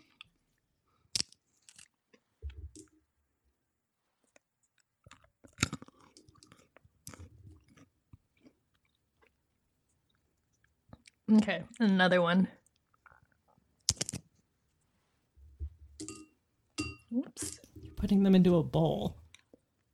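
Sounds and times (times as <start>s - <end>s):
crunchy snack being chewed: 1.1s - 2.2s, 4.8s - 9.4s, 12.7s - 14.3s
speech: 11.3s - 12.6s, 18.1s - 19.2s.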